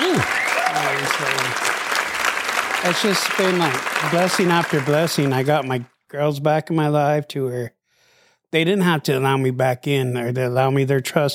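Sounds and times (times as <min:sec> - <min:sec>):
round of applause marking a ten-year milestone: 0:00.0 - 0:06.0
speech: 0:01.0 - 0:01.8, 0:02.8 - 0:07.8, 0:08.5 - 0:11.3.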